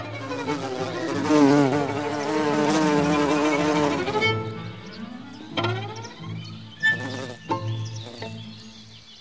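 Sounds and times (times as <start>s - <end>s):
wild bee buzzing in flight: 0.2s - 4.3s, 6.9s - 8.3s.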